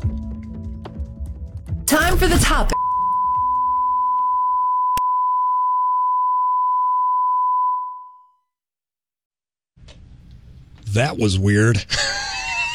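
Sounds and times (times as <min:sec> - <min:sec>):
speech: 0:02.0 - 0:02.8, 0:11.0 - 0:12.3
long steady electronic beep: 0:02.8 - 0:08.4
laughter: 0:11.8 - 0:12.7.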